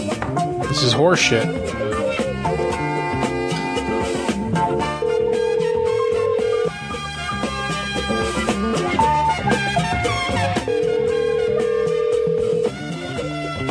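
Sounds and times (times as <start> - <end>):
dense music: 0.0 - 13.6
speech: 0.8 - 1.9
telephone dial tone while a prank call is placed: 4.8 - 7.0, 10.7 - 12.8.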